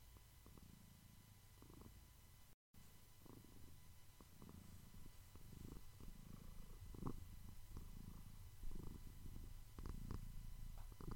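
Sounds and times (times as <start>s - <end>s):
domestic cat purring: 0.0s - 2.1s, 2.8s - 11.1s.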